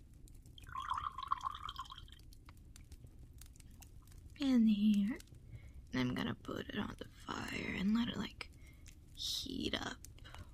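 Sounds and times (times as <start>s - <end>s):
low rumble: 0.0s - 10.5s
milk poured steadily into a container: 0.5s - 2.4s
speech: 4.4s - 8.4s, 9.4s - 10.1s.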